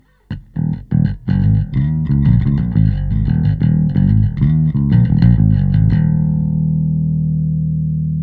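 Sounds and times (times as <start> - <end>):
compressed crushed bass: 0.3 - 8.2.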